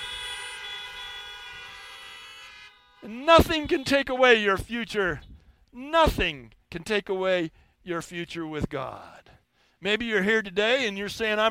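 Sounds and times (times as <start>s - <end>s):
several car horns honking: 0.0s - 5.4s
speech: 3.0s - 9.2s, 9.8s - 11.4s.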